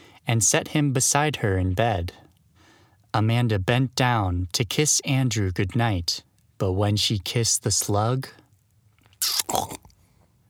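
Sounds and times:
speech: 0:00.3 - 0:02.2, 0:03.1 - 0:08.4, 0:09.2 - 0:09.8
short wet slurp sound effect: 0:09.1 - 0:10.0.

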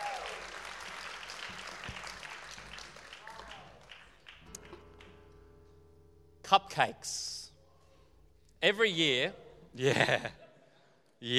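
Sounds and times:
crowd applauding: 0:00.0 - 0:05.3
speech: 0:06.5 - 0:07.4, 0:08.6 - 0:10.4, 0:11.2 - 0:11.3
laughter: 0:09.7 - 0:10.7.

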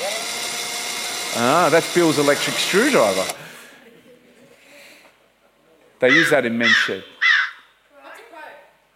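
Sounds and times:
speech: 0:01.4 - 0:03.4, 0:06.0 - 0:07.1
crow giving a harsh raspy caw: 0:06.1 - 0:07.8.

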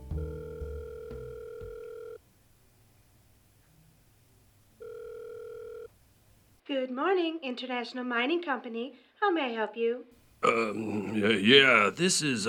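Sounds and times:
steady electronic phone line ring tone in the earpiece: 0:00.0 - 0:02.2, 0:04.8 - 0:05.9
speech: 0:06.7 - 0:12.4.

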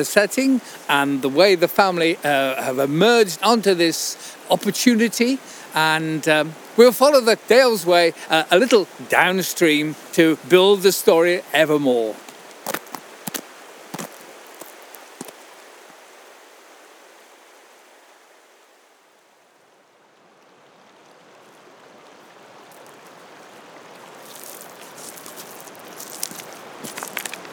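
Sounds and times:
speech: 0:00.0 - 0:12.2
River Kent rushing at Bowston: 0:00.0 - 0:27.5
crunching footsteps on a loose shingle shore beside the river: 0:11.6 - 0:15.6, 0:24.2 - 0:27.5.

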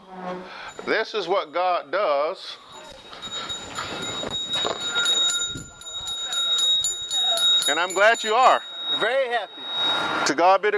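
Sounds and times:
hand bell ringing for prayer: 0:00.6 - 0:01.6, 0:02.6 - 0:10.2
speech: 0:00.9 - 0:02.7, 0:07.7 - 0:10.7.

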